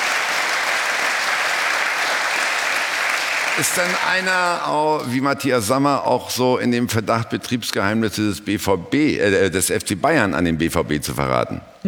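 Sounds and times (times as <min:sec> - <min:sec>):
studio audience applauding during a football talk show: 0:00.0 - 0:04.8
speech: 0:03.6 - 0:11.8.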